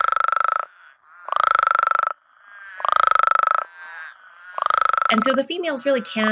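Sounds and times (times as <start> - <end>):
male Mexican spadefoot toad giving croaky baritone trilled calls: 0.0 - 6.2
speech: 5.1 - 6.2.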